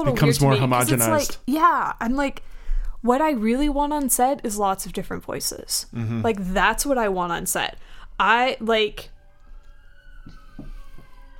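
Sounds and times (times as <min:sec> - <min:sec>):
speech: 0:00.0 - 0:09.1
emergency vehicle siren wailing outside: 0:07.8 - 0:11.3.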